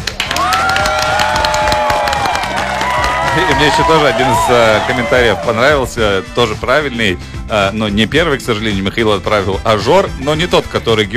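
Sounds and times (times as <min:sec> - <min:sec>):
crowd applause and cheering: 0:00.0 - 0:06.1
speech: 0:03.5 - 0:11.1.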